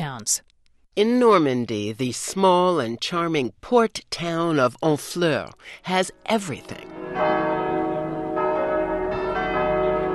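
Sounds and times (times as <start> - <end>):
speech: 0.2 - 7.4
old church tower bells ringing: 6.6 - 10.1.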